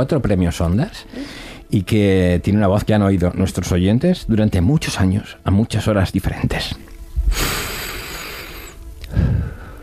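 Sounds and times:
speech: 0.0 - 7.7
man breathing deeply: 1.1 - 1.7, 7.2 - 9.8.

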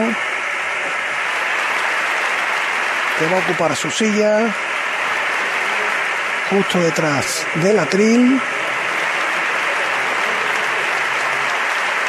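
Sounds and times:
applause from a large audience: 0.0 - 12.0
speech: 3.2 - 4.7, 6.5 - 8.6.

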